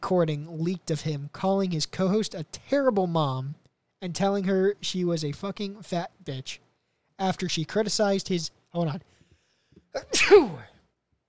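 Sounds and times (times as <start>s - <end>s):
speech: 0.1s - 6.6s, 7.2s - 9.2s, 9.9s - 10.7s
person sneezing: 10.0s - 10.8s.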